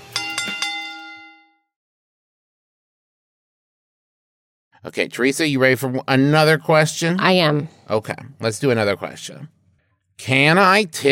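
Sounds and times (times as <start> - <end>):
wrestling ring bell clanging: 0.0 - 1.7
speech: 4.8 - 9.6, 10.2 - 11.1.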